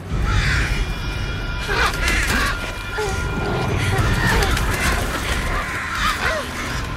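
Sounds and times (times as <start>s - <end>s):
flock of crows cawing and screeching while attacking: 0.0s - 6.9s
crows flapping: 1.7s - 6.9s.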